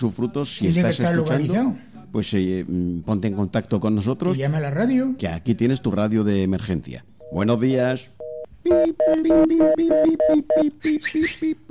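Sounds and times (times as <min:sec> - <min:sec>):
speech: 0:00.0 - 0:11.6
telephone busy signal on a call to a radio station: 0:08.2 - 0:10.8.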